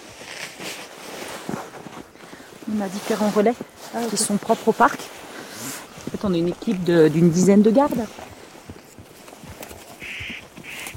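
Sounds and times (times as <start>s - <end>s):
speech: 2.7s - 5.2s, 6.2s - 8.2s
spotted nutcracker calling: 10.0s - 10.9s.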